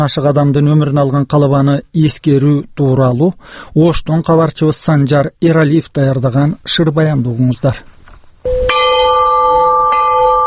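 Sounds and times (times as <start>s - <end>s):
speech: 0.0s - 8.6s
large 50 kg Russian-made peace bell struck at a memorial ceremony: 8.5s - 10.4s.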